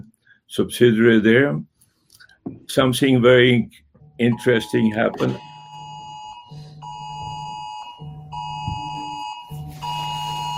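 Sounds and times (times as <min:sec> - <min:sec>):
speech: 0:00.5 - 0:01.7, 0:02.5 - 0:05.5
home alarm system beeping: 0:04.0 - 0:10.5.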